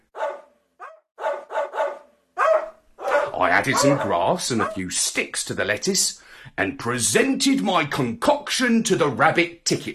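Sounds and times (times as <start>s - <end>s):
farm dog barking: 0.1s - 4.9s
speech: 3.3s - 9.9s.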